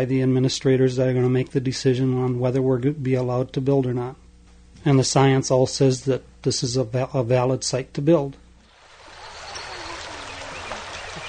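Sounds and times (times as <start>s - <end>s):
speech: 0.0s - 4.2s, 4.8s - 8.4s
spring-fed river water flowing: 8.7s - 11.2s.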